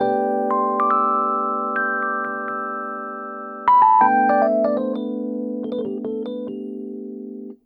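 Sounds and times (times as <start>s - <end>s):
jazz keys with chorus effect: 0.0s - 7.6s.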